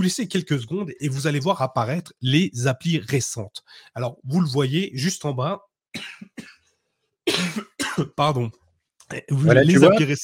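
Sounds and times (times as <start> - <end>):
speech: 0.0 - 6.6, 7.4 - 10.2
person coughing dry and harsh coughs: 6.0 - 6.6, 7.3 - 8.3.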